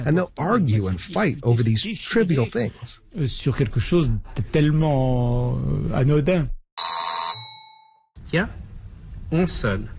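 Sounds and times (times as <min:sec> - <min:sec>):
speech: 0:00.0 - 0:06.6, 0:08.3 - 0:08.6, 0:09.3 - 0:09.9
bright doorbell chime: 0:06.8 - 0:08.1.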